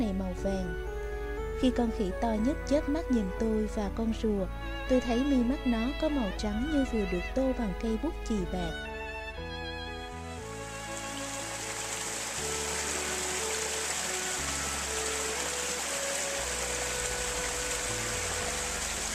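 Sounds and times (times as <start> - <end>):
speech: 0.0 - 1.0, 1.6 - 8.9
quiet music: 0.0 - 19.1
rushing water of a low waterfall over a rugged hillside: 10.4 - 19.1.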